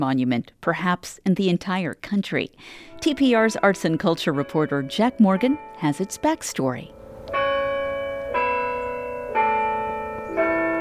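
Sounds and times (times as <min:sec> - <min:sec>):
speech: 0:00.0 - 0:07.0
deep church bell tolling: 0:02.8 - 0:10.7.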